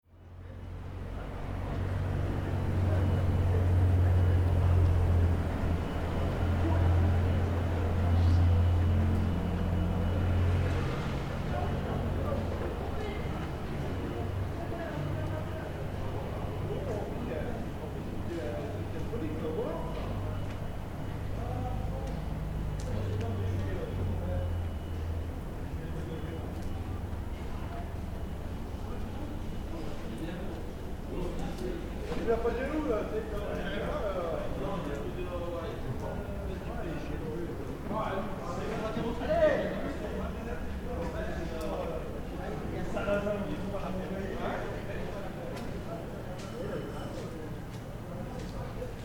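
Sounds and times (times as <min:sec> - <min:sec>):
people socializing at night: 0:00.0 - 0:49.0.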